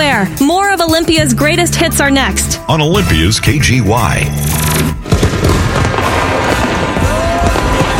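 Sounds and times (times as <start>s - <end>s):
speech: 0.2s - 4.7s
fireworks booming and crackling: 5.0s - 7.9s.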